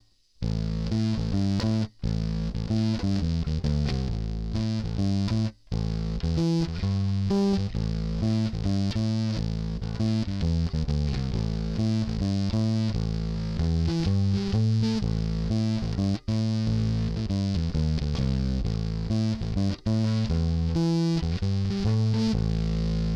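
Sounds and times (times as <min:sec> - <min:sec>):
bass in a split configuration as an effect: 0:00.4 - 0:23.1.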